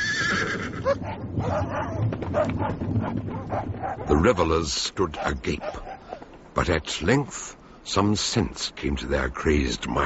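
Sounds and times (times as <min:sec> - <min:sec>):
horse neighing: 0:00.0 - 0:01.0
speech: 0:00.4 - 0:05.9, 0:06.6 - 0:10.0.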